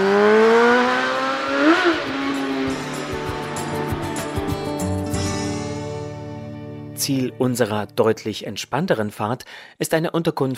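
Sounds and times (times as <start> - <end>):
motorcycle engine revving and roaring past on the road atop a dam in the Harz: 0.0 - 4.8
speech: 7.1 - 10.5.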